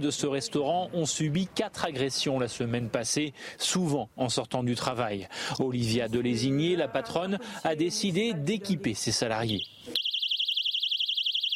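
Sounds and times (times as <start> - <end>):
speech: 0.0 - 10.0
personal safety alarm carried by restaurant staff in Nantes France wailing: 9.5 - 11.5.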